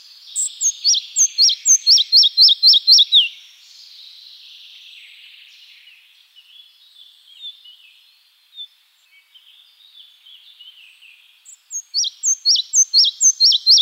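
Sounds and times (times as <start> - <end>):
red-breasted flycatcher singing in Iran: 0.0 - 3.8, 10.7 - 13.7.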